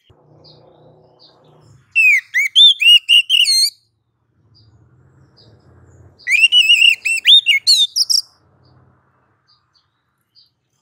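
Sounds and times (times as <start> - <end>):
faint low rumbling: 0.0 - 2.3, 3.9 - 7.1, 8.0 - 10.8
female Oriental magpie-robin whistling and warbling, calling to the male: 0.0 - 3.9, 6.2 - 8.4.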